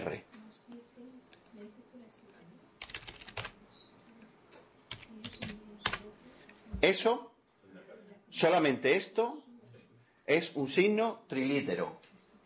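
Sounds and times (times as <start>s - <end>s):
typing on a computer keyboard: 2.8s - 3.6s, 4.9s - 6.1s
speech: 6.8s - 7.3s, 8.4s - 9.5s, 10.3s - 12.1s.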